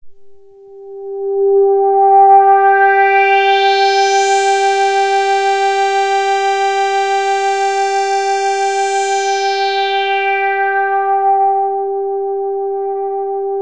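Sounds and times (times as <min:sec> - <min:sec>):
SE-1 synthesizer sweep: 0:01.7 - 0:13.6.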